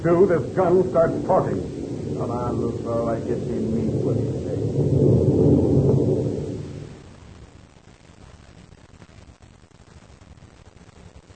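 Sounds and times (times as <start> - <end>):
speech: 0.0 - 5.1
loud deep rumble of tropical thunder: 0.0 - 7.1
dense wash of heavy rain: 0.0 - 11.3.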